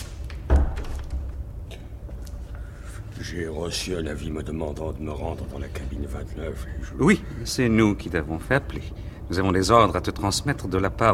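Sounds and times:
door pushed shut with a solid thud: 0.4s - 1.3s
faint rattle of a door settling: 0.4s - 1.5s
speech: 3.2s - 11.1s.

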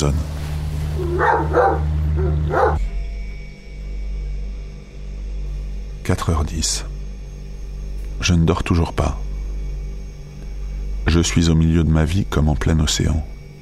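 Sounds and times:
speech: 0.0s - 0.3s, 1.1s - 2.9s, 6.1s - 6.9s, 8.2s - 9.2s, 11.1s - 13.3s
steady low electrical hum: 0.0s - 13.6s
dog barking at night: 1.0s - 2.9s.

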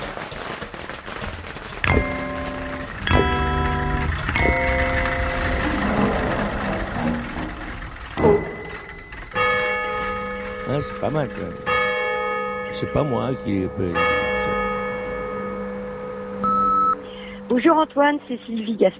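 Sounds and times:
faint steady noise: 1.7s - 18.9s
bicycle bell ringing: 1.9s - 17.0s
speech: 10.8s - 11.7s, 12.8s - 14.6s, 17.6s - 18.9s.

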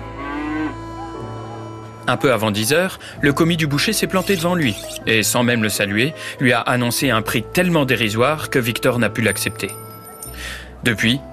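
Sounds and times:
cow mooing: 0.0s - 2.2s
speech: 2.1s - 11.3s.

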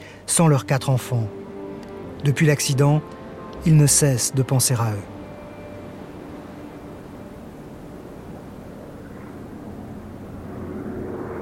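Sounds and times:
speech: 0.4s - 1.4s, 2.2s - 5.2s
jet airplane flying overhead: 5.1s - 11.4s.

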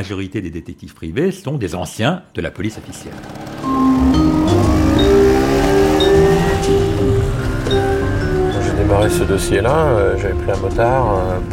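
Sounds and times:
speech: 0.0s - 4.0s, 8.9s - 11.5s
car engine revving as it accelerates through the gears in city traffic: 2.8s - 10.2s
road rumble of a car in city traffic: 3.0s - 11.5s.

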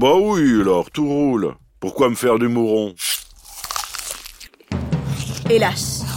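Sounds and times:
speech: 0.0s - 3.1s, 5.5s - 5.9s
person biting and chewing crunchy food: 3.0s - 5.5s.

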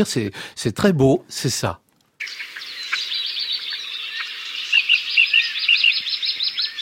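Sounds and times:
speech: 0.0s - 2.5s
small birds chirping and twittering: 2.2s - 6.8s.

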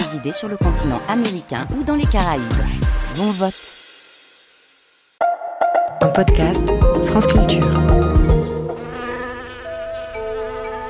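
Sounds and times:
speech: 0.1s - 3.8s, 6.0s - 8.4s
bee buzzing: 7.6s - 10.8s.

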